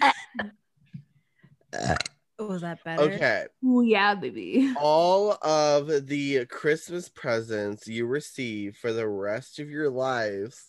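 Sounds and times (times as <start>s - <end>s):
person burping a short tight burp: 0.0s - 0.5s, 1.7s - 2.2s
speech: 2.6s - 10.6s.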